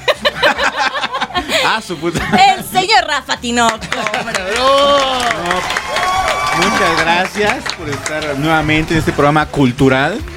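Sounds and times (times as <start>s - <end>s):
laughter: 0.0s - 3.0s, 3.7s - 5.7s
speech: 1.8s - 5.8s, 6.6s - 10.3s
audience clapping for a male guest being welcomed: 3.4s - 9.4s
loud voice cheering over applause: 4.5s - 7.2s.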